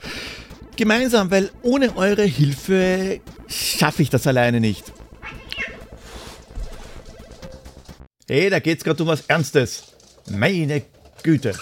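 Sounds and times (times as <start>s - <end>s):
speech: 0.8s - 5.0s, 8.3s - 11.6s
cat meowing: 5.2s - 5.9s.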